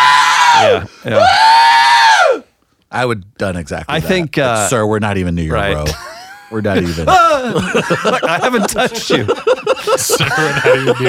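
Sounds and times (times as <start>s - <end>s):
man screaming: 0.0s - 2.4s
speech: 0.6s - 1.5s, 2.9s - 11.0s
laughter: 5.8s - 11.0s.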